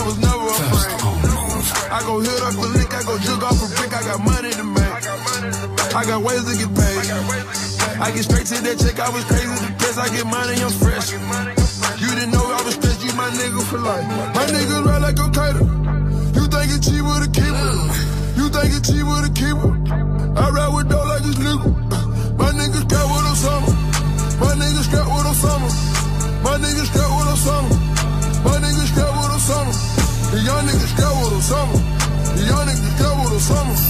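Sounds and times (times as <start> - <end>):
deep booming bass notes in a repeating pattern: 0.0 - 5.0, 14.9 - 33.8
bending melodic sung or rapped vocal lines: 0.0 - 33.8
brand-new hip-hop track playing loudly on morning radio in France: 0.0 - 33.8
speech: 2.0 - 23.8, 24.4 - 27.8, 29.4 - 33.8.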